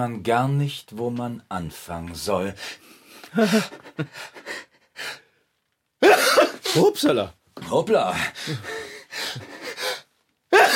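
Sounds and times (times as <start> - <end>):
speech: 0.0 - 5.2, 6.3 - 9.5
person with a cat allergy sneezing in a bicycle shop: 6.0 - 6.8, 10.5 - 10.7.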